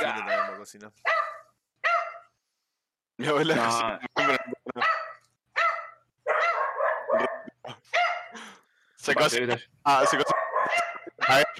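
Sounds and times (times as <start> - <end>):
dogs barking: 0.1 - 2.3, 4.1 - 8.4, 9.9 - 11.5
speech: 0.6 - 1.3, 3.2 - 4.9, 9.0 - 11.5.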